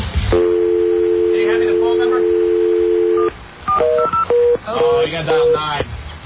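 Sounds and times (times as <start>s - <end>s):
telephone handset dial tone: 0.4s - 4.4s
telephone keypad touch tones dialing a number: 0.4s - 5.6s.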